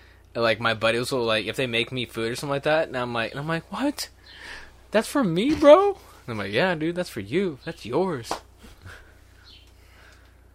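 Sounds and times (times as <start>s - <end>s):
steady low hum: 0.0s - 10.5s
speech: 0.4s - 9.0s
faint bird chirps outside: 9.4s - 10.1s.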